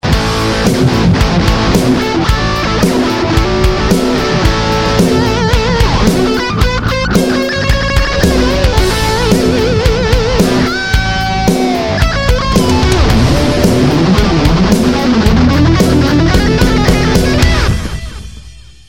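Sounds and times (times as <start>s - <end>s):
extreme guitar: 0.0s - 18.8s.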